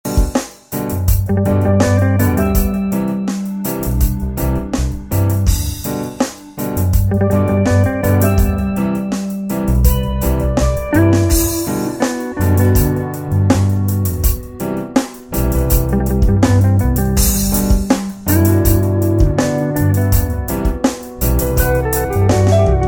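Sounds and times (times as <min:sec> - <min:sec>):
relaxing calm romantic Caribbean music loop: 0:00.0 - 0:22.8.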